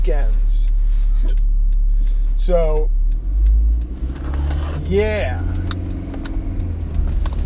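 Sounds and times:
car driving on the road home from work heard from inside: 0:00.0 - 0:07.4
speech: 0:02.4 - 0:03.0, 0:04.9 - 0:05.5.

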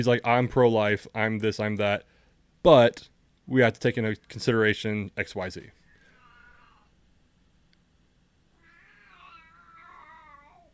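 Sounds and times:
speech: 0:00.0 - 0:05.8
cat meowing unhappily: 0:08.6 - 0:10.6.

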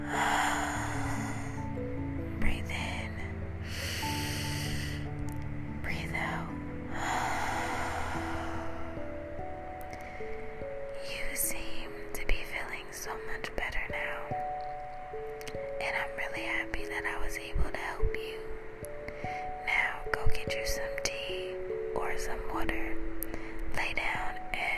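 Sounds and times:
slow deep breathing in and out: 0:00.0 - 0:01.9, 0:03.6 - 0:05.2, 0:06.9 - 0:10.8
soft sustained music tones: 0:00.0 - 0:24.7.

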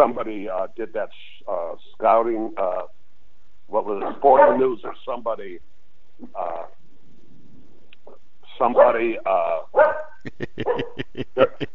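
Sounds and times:
speech: 0:00.0 - 0:03.0, 0:03.7 - 0:06.8, 0:08.6 - 0:11.7
dogs barking indoors: 0:04.0 - 0:04.8, 0:08.7 - 0:09.0, 0:09.7 - 0:11.1
laughter: 0:10.3 - 0:11.7.

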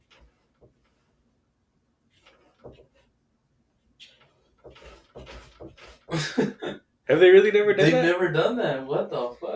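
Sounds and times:
pet scratching at a door: 0:00.0 - 0:01.3, 0:02.0 - 0:03.2, 0:03.8 - 0:06.4
speech: 0:06.1 - 0:09.3.

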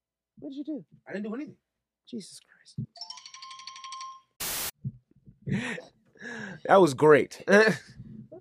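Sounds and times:
speech: 0:00.4 - 0:03.2, 0:05.5 - 0:06.0, 0:06.6 - 0:08.0
phone ringtone: 0:03.0 - 0:04.4
loud burst of harsh noise: 0:04.4 - 0:04.7.

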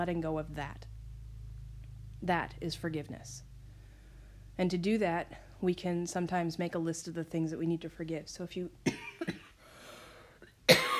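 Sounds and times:
speech: 0:00.0 - 0:00.9, 0:02.2 - 0:03.5, 0:04.6 - 0:09.4
person coughing: 0:08.8 - 0:09.6, 0:10.7 - 0:10.9.

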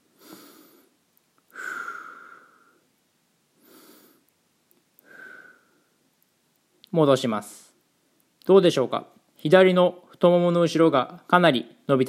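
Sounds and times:
deep breathing during a seated hamstring stretch: 0:00.0 - 0:02.9, 0:03.6 - 0:04.3, 0:05.0 - 0:06.0
speech: 0:06.9 - 0:07.6, 0:08.5 - 0:12.0.

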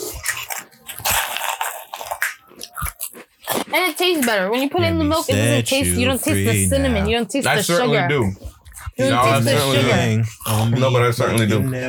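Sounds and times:
dry cereal being chewed against the microphone: 0:00.0 - 0:04.7
speech: 0:03.7 - 0:08.4, 0:09.0 - 0:11.8.

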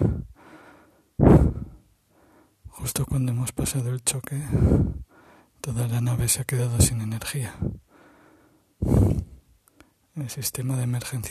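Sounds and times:
person aboard a spaceship gasping for breath: 0:00.0 - 0:02.6, 0:04.5 - 0:05.5, 0:07.5 - 0:09.4
speech: 0:02.9 - 0:07.9, 0:10.2 - 0:11.3.

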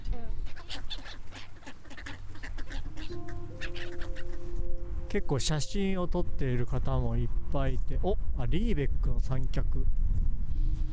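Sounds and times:
ducks quacking at a lakeside: 0:00.4 - 0:04.5
black-headed gulls calling at a lakeside: 0:00.4 - 0:07.1
low outdoor rumble: 0:01.2 - 0:10.9
speech: 0:05.1 - 0:10.1.

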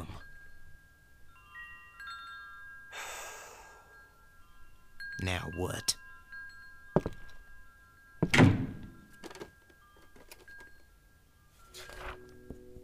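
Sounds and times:
speech: 0:05.2 - 0:06.0
door banging open upstairs: 0:08.2 - 0:09.0.

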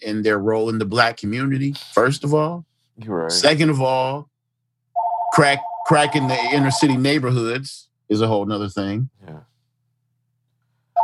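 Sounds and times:
speech: 0:00.0 - 0:04.3, 0:05.4 - 0:09.5
phone electronic ring tone with a bright warbling beep: 0:05.0 - 0:07.0.

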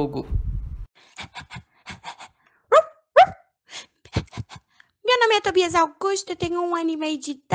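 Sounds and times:
low rumble: 0:00.0 - 0:00.9
speech: 0:00.0 - 0:01.5, 0:05.3 - 0:07.5
dog panting: 0:01.1 - 0:02.4
dog whiny yelps: 0:02.7 - 0:03.4.

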